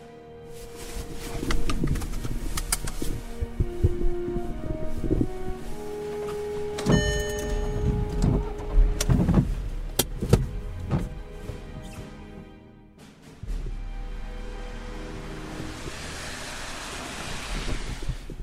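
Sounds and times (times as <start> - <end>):
wind rumble buffeting the microphone outside a roadside grill bar: 1.2 - 11.2, 17.3 - 18.4
car power window whirring: 6.2 - 12.1, 13.6 - 18.4
clanks and knocks: 6.8 - 12.6.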